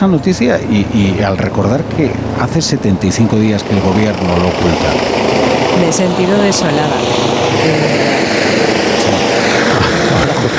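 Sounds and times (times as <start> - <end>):
speech: 0.0 - 8.8
helicopter hovering overhead: 0.0 - 10.5
laughter: 9.0 - 10.5.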